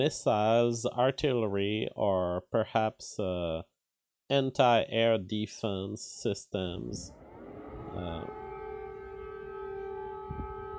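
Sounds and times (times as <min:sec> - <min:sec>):
speech: 0:00.0 - 0:03.7, 0:04.3 - 0:07.2, 0:07.9 - 0:08.4
brief low rumble: 0:07.0 - 0:10.7
air raid siren wailing in Kyiv: 0:07.1 - 0:10.7.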